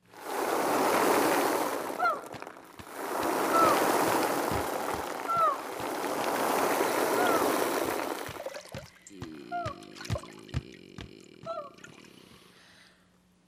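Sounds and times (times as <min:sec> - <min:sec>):
ocean surf waves on a shore: 0:00.0 - 0:10.3.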